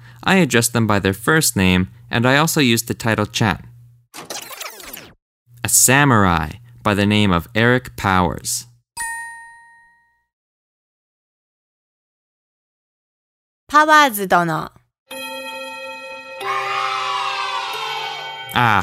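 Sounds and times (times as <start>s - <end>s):
speech: 0.2s - 3.7s, 5.6s - 8.7s, 13.8s - 14.8s, 18.6s - 18.8s
single clear bell ding: 9.0s - 10.2s, 15.1s - 16.5s, 18.2s - 18.8s
school-style bell chime: 15.1s - 18.8s.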